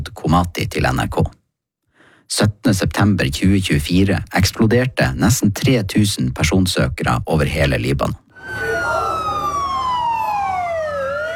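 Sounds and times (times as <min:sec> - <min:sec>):
speech: 0:00.3 - 0:01.4, 0:02.3 - 0:08.2
ambulance sirens wailing through a street in Lebanon after pager explosions: 0:08.4 - 0:11.3.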